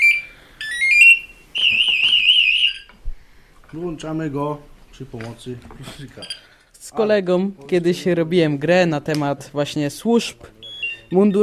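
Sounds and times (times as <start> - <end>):
firefighter's motionless-alarm sensor electronic alarm warbling: 0.0 - 2.9, 10.6 - 11.4
speech: 3.7 - 11.4.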